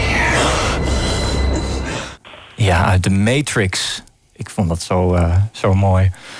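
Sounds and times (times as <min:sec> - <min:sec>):
subway train approaching: 0:00.0 - 0:02.2
thin metallic whine of subway train: 0:00.0 - 0:02.6
speech: 0:02.7 - 0:06.3.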